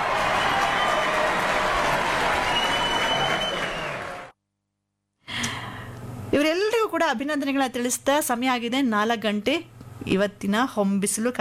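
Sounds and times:
congratulatory applause: 0.0s - 4.3s
speech: 6.4s - 11.3s.

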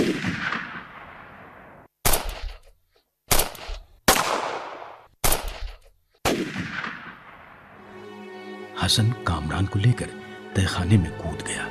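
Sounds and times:
gunshots inside a dark factory with rolling echo: 0.0s - 2.6s, 3.3s - 7.6s
speech: 8.8s - 11.6s.

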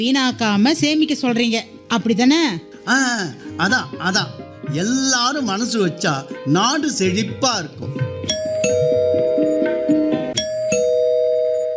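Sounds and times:
speech: 0.0s - 8.1s
doorbell ringing at night in a home: 8.3s - 11.7s.

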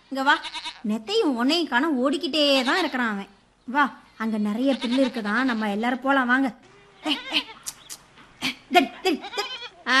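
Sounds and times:
speech: 0.1s - 7.6s, 8.7s - 9.9s
goats bleating while being herded to graze: 0.3s - 0.9s, 4.6s - 5.8s, 7.0s - 7.7s, 9.2s - 9.9s.

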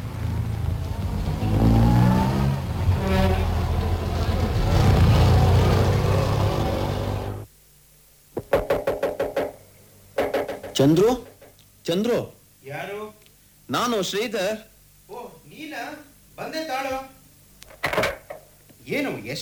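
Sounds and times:
bus engine rumbling: 0.0s - 7.5s
sharp knocks: 8.4s - 9.6s, 10.2s - 11.6s
speech: 10.8s - 11.3s, 11.9s - 14.7s, 15.6s - 17.1s, 18.9s - 19.3s.

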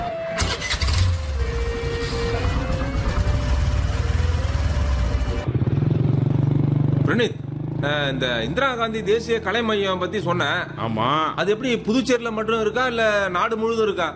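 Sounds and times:
motorbike engine starting: 0.4s - 6.3s
motorbike engine rumbling as it pulls away: 0.4s - 8.6s
speech: 7.1s - 14.1s.

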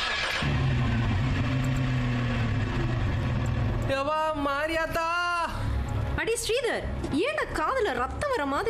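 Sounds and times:
car engine starting and revving as the car moves off: 0.0s - 3.9s
speech: 4.0s - 5.1s, 6.4s - 8.6s.

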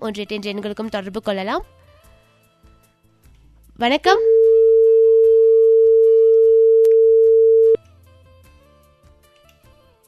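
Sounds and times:
speech: 0.0s - 1.9s, 3.8s - 4.4s
faint low hum: 4.2s - 7.8s
telephone line tone after a dropped phone call: 4.2s - 7.8s.

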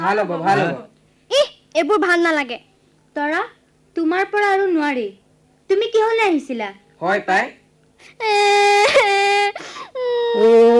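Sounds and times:
speech: 0.0s - 0.9s, 1.8s - 10.7s
child crying: 8.0s - 10.7s.

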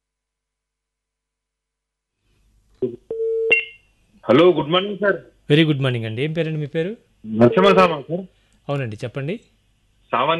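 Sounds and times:
speech: 2.8s - 3.0s, 4.2s - 10.3s
telephone tones after a phone call is cut off: 2.8s - 3.8s.

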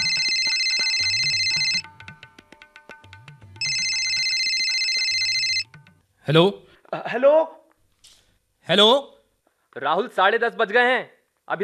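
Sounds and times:
mobile phone ringtone for an incoming call: 0.0s - 1.9s, 3.6s - 5.7s
speech: 6.3s - 7.6s, 8.7s - 9.1s, 9.8s - 11.6s.

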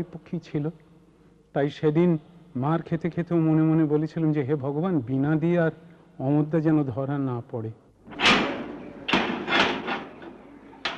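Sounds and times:
speech: 0.0s - 0.9s, 1.5s - 8.4s
door sharp knocks and scraping bursts: 8.1s - 10.9s
door suddenly being opened: 8.1s - 10.9s.

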